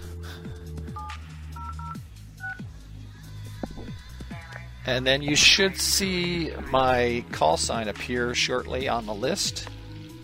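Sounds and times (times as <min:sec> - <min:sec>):
touch-tone keypad beeps dialing on a desk phone: 0:01.0 - 0:02.6
speech: 0:04.8 - 0:09.7.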